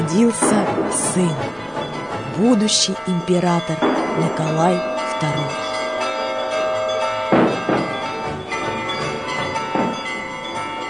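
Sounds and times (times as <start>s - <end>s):
church bells ringing for the baptism of an infant: 0.0s - 10.8s
speech: 0.1s - 1.7s, 2.4s - 5.7s.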